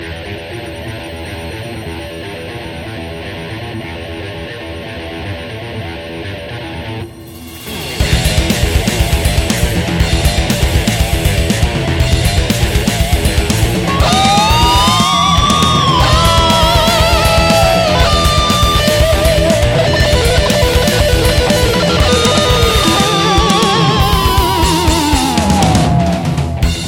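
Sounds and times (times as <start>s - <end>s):
guitar space noise: 5.7s - 26.8s.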